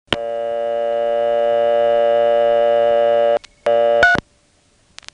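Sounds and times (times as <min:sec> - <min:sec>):
telephone busy signal: 0:00.1 - 0:04.2.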